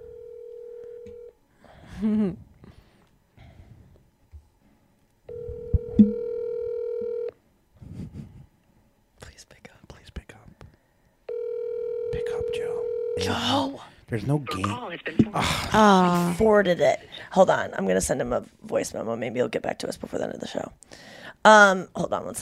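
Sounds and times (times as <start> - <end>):
electronic ringback tone over a phone handset: 0.0 - 1.3, 5.3 - 7.4, 11.3 - 13.4
speech: 2.0 - 2.5, 14.1 - 22.3.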